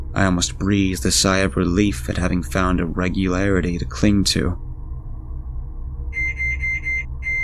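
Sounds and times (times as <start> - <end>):
low microwave oven hum: 0.0 - 7.4
speech: 0.2 - 4.7
microwave oven timer beeping: 6.2 - 7.4.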